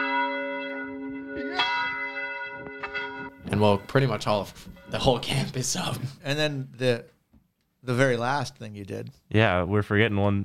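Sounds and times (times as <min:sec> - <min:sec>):
large church bell ringing: 0:00.0 - 0:05.9
speech: 0:03.5 - 0:07.2, 0:07.8 - 0:10.4.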